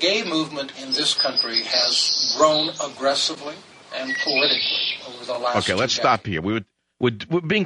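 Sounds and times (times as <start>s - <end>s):
bird singing high thin whistled notes: 0.0s - 6.0s
speech: 0.0s - 7.6s.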